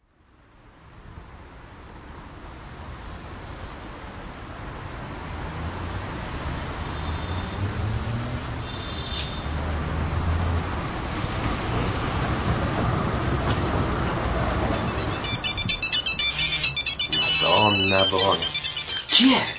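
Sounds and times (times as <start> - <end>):
steady rushing noise: 1.3 - 19.5
mobile phone ringtone: 14.2 - 19.5
people talking: 16.2 - 19.5.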